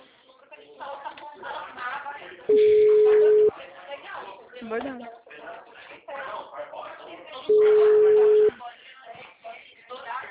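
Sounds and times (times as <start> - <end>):
telephone beep after a dropped call: 2.5 - 3.5, 7.5 - 8.5
speech: 4.7 - 5.2.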